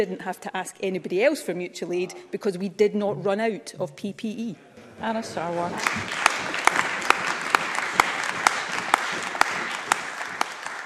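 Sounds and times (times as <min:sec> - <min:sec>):
speech: 0:00.0 - 0:06.2
applause in a parliament chamber: 0:05.2 - 0:10.8
sharp loud claps: 0:05.7 - 0:10.8.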